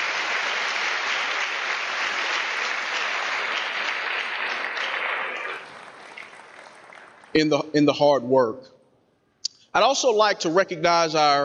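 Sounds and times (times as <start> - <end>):
large audience applauding faculty, staff and administrators of a county school district: 0.0 - 7.4
speech: 7.4 - 8.8, 9.8 - 11.4.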